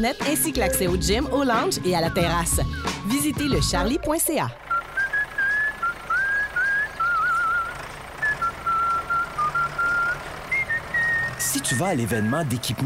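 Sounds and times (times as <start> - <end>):
speech: 0.0 - 4.6, 11.7 - 12.8
person whistling a cheerful melody: 4.7 - 12.6.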